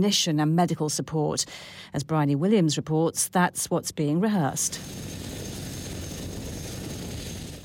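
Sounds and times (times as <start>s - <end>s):
speech: 0.0s - 5.2s
Chinook helicopter flying: 4.2s - 7.6s.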